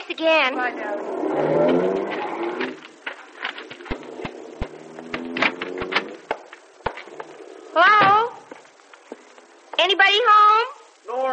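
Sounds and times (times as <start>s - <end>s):
car engine rumbling and idling: 0.0s - 10.0s
speech: 0.1s - 2.7s
sharp clicks and knocks: 2.6s - 7.4s.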